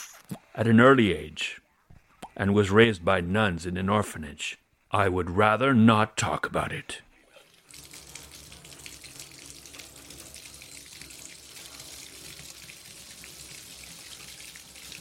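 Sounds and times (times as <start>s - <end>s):
speech: 0.6s - 1.6s, 2.4s - 7.1s
water pouring from a tap into a bath: 7.6s - 14.9s.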